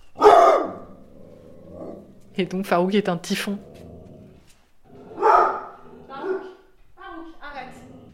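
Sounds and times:
dog barking: 0:00.2 - 0:00.9, 0:05.1 - 0:06.7
speech: 0:02.4 - 0:03.7.

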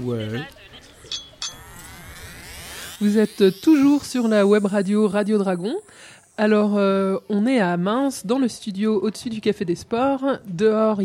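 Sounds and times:
speech: 0:00.0 - 0:01.2, 0:03.0 - 0:11.0
wine glass clinking: 0:01.0 - 0:01.7.

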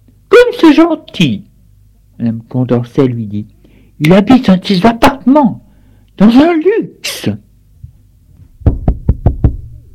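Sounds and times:
speech: 0:00.6 - 0:01.5, 0:02.2 - 0:05.6, 0:06.2 - 0:07.4
quiet low hum: 0:07.8 - 0:09.9
sharp knocks at a door: 0:08.6 - 0:09.6.

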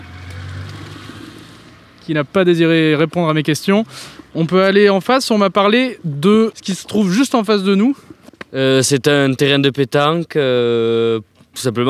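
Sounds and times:
small hatchback car driving past: 0:00.0 - 0:04.4
speech: 0:02.1 - 0:11.8.

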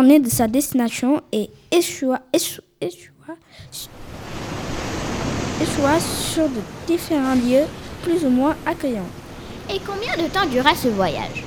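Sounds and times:
speech: 0:00.0 - 0:04.2, 0:05.6 - 0:11.4
roar of rough stormy sea waves: 0:03.6 - 0:11.4.

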